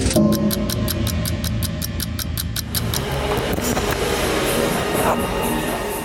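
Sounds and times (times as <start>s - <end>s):
rapid regular ticking: 0.0s - 3.5s
street traffic noise through open windows of a social centre on a summer morning: 1.1s - 6.0s.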